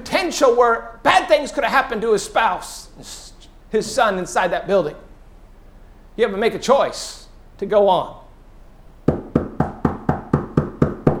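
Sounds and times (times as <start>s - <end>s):
speech: 0.1s - 5.0s, 6.2s - 8.2s
firm knocks on a door: 9.1s - 11.1s.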